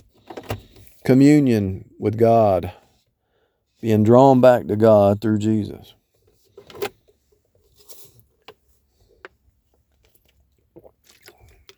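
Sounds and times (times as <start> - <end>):
speech: 1.1 - 2.8, 3.8 - 6.0
person drinking water from a bottle with sips and gulps: 10.2 - 11.7.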